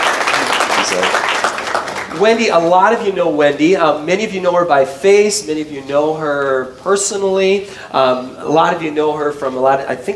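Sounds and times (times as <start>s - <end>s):
crowd applauding for a guest: 0.0s - 2.3s
speech: 0.9s - 10.1s.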